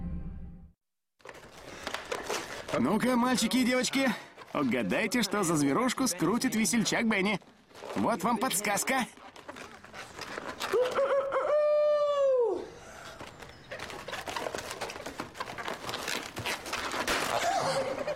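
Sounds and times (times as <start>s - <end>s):
rustling: 1.2s - 11.3s, 12.8s - 18.1s
speech: 2.7s - 9.2s
rooster crowing: 10.7s - 12.7s
laughter: 17.3s - 18.1s.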